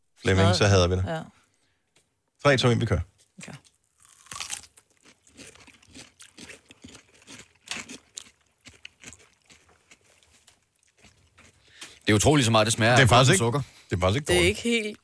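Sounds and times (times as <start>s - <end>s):
speech: 0.2s - 1.4s, 2.4s - 3.7s, 12.1s - 15.0s
crunchy chewing of watermelon-flavoured food without its peel: 3.7s - 12.2s.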